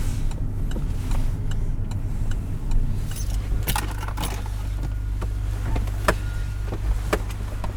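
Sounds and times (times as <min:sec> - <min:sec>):
car engine humming while being parked at the port of Dunkirk: 0:00.0 - 0:07.7
light metallic jangle: 0:03.0 - 0:05.2.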